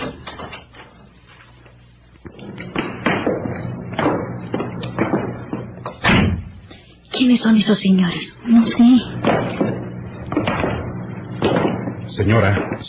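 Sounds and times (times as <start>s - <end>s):
heavy footsteps thudding: 2.2s - 7.0s, 9.2s - 12.8s
speech: 7.2s - 9.3s, 12.2s - 12.8s.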